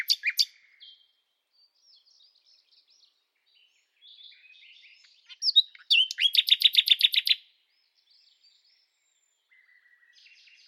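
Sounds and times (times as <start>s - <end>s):
bird singing: 0.0s - 10.6s.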